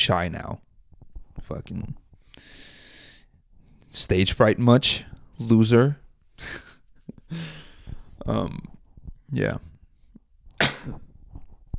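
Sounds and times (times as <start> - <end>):
speech: 0.0 - 0.6, 1.4 - 2.6, 3.9 - 6.6, 7.3 - 7.6, 8.2 - 8.7, 9.3 - 9.7, 10.8 - 11.0
person coughing: 10.6 - 11.0.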